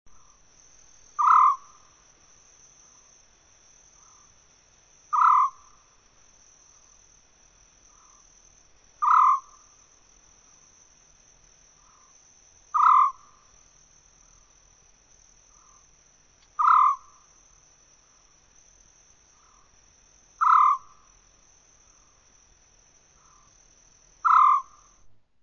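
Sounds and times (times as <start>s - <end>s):
African Scops-Owl calling: 1.2s - 1.8s, 5.1s - 5.8s, 9.0s - 9.7s, 12.7s - 13.4s, 16.6s - 17.2s, 20.4s - 21.0s, 24.2s - 25.0s.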